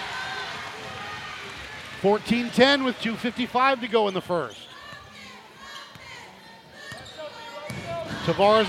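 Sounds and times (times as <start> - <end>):
speech: 2.0 - 4.7, 8.3 - 8.6
basketball dribbled on a court during a game: 7.7 - 8.3.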